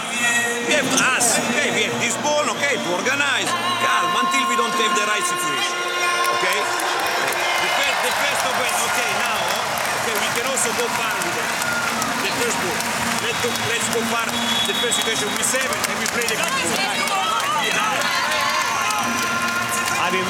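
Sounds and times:
large indoor arena crowd cheering: 0.0 - 20.2
people shouting: 3.2 - 20.2
whistles: 9.2 - 9.9, 13.3 - 15.8.

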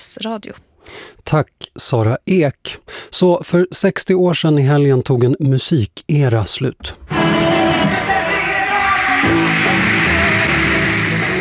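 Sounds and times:
speech: 0.2 - 8.5, 9.2 - 10.0
band music at a concert: 6.8 - 11.3
high-pitched fans screaming at a concert in San Francisco: 7.1 - 11.3.

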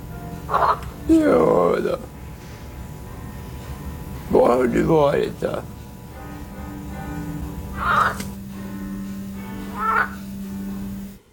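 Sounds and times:
low steady hum: 0.0 - 11.3
parrot giving raspy squawks: 0.5 - 0.9, 7.7 - 8.4, 9.6 - 10.2
speech: 0.5 - 2.1, 4.6 - 5.7.

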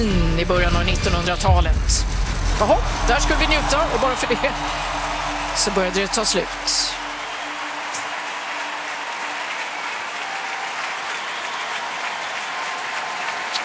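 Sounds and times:
speech: 0.0 - 7.0
large crowd applauding in an arena in Vienna: 2.2 - 13.6.

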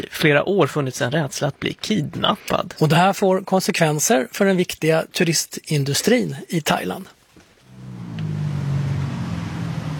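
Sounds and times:
speech: 0.0 - 7.2
cars and small motorcycles passing on a hot sunny street in Bangkok Thailand: 7.6 - 9.9.

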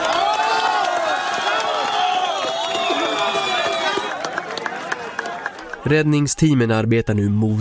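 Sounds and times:
many overlapping shouts and whoops: 0.0 - 5.4
large crowd cheering and applauding at a rescue: 0.0 - 6.6
speech: 5.9 - 7.6.

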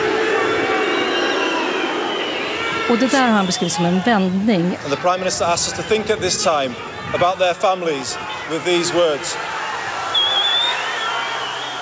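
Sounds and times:
audience booing a government minister giving a memorial speech: 0.0 - 5.0, 7.8 - 11.8
speech: 2.9 - 9.6.

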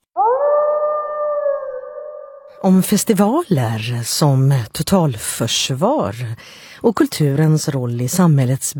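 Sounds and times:
wolf howling: 0.1 - 2.6
speech: 2.6 - 8.7.

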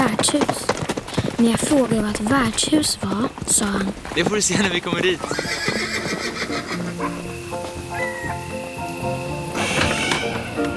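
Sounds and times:
speech: 0.2 - 0.8, 1.4 - 6.2
steady hissing: 2.3 - 10.7
horse whinnying: 5.1 - 8.6, 9.5 - 10.7.

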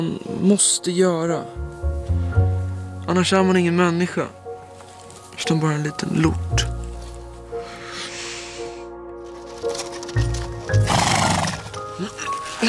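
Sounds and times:
speech: 0.0 - 1.7, 3.1 - 4.4, 5.4 - 6.7
hooves clip-clopping as a rider rides away: 9.2 - 12.5
horse neighing in shrill whinnies: 10.8 - 12.1.

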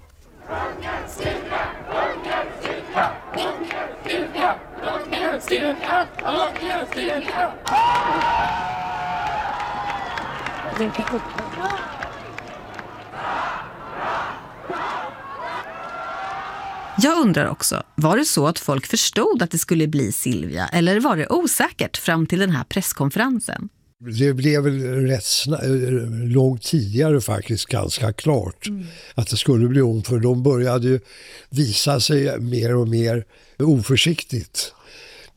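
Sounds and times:
large crowd shouting rhythmic hurrahs: 0.3 - 17.5
speech: 5.4 - 8.9, 10.8 - 11.9, 17.0 - 35.3.

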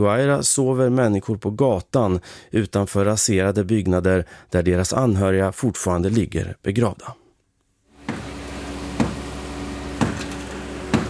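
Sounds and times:
speech: 0.0 - 7.2
hammer striking concrete of a collapsed house in La Guaira: 8.0 - 11.0.

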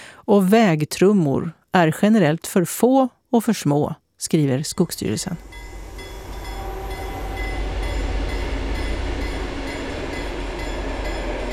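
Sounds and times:
speech: 0.3 - 5.7
train rushing past on a gravel railway embankment: 4.7 - 11.5.

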